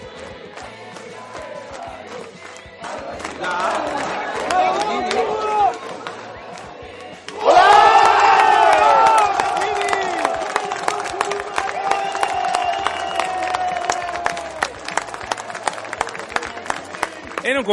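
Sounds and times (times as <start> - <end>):
large crowd singing a football club anthem in unison: 0.0 - 9.4
scattered claps: 0.0 - 17.7
crowd cheering and shouting: 2.8 - 17.7.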